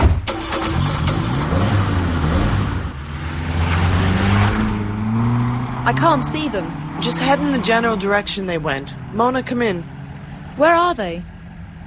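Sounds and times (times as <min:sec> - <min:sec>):
car engine cranking, starting and revving as the car pulls away: 0:00.0 - 0:11.8
speech: 0:05.9 - 0:10.0, 0:10.6 - 0:11.3.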